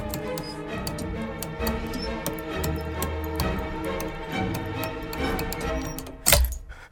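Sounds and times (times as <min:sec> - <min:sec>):
pendulum clock ticking: 0:00.0 - 0:06.8.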